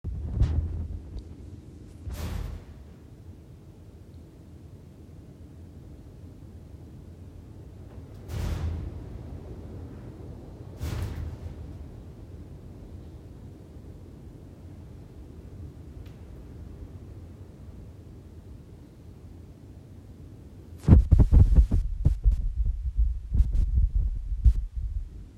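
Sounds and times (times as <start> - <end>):
fast wind: 0.0 - 25.3
slamming sound in a mysterious old house caused by wind: 2.0 - 2.9, 8.2 - 9.2, 10.8 - 11.8.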